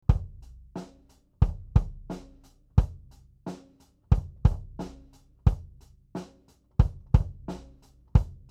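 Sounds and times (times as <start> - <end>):
loud kick drum: 0.0 - 0.5, 1.4 - 3.1, 4.1 - 5.8, 6.8 - 8.4.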